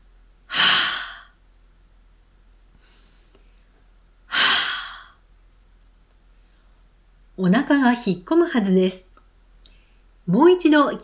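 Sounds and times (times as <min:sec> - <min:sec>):
forceful exhale blown onto the palm of a hand: 0:00.5 - 0:01.3, 0:04.3 - 0:05.2
speech: 0:07.4 - 0:09.0, 0:10.3 - 0:11.0.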